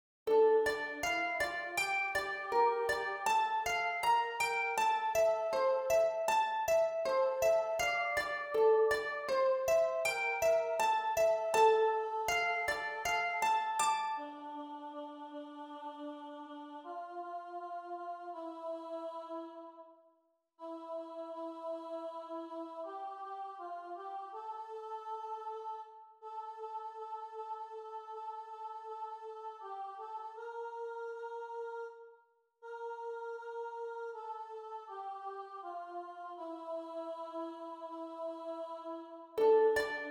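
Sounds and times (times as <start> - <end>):
harp playing a psalm: 0.3 - 14.6, 39.4 - 40.1.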